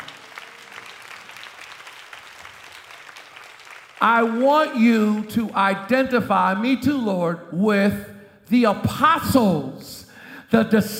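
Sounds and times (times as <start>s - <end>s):
audience clapping: 0.0s - 5.6s
speech: 4.0s - 10.9s.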